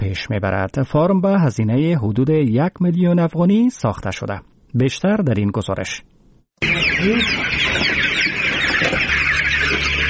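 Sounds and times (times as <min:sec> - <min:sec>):
speech: 0:00.1 - 0:07.9
many chickens clucking and chirping inside a poultry farm hall: 0:06.6 - 0:10.0.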